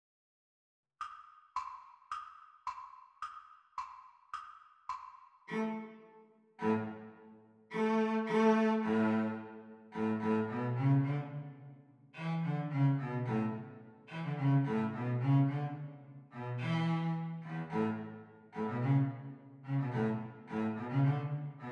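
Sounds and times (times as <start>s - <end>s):
cello playing the teacher part of a duet: 5.5s - 21.7s.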